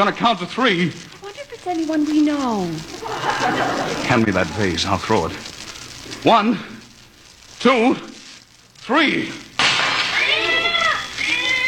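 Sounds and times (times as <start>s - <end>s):
speech: 0.0s - 5.5s, 6.2s - 6.7s, 7.6s - 8.1s, 8.8s - 9.4s
laughter: 2.9s - 5.3s
cat meowing loudly: 10.2s - 11.6s.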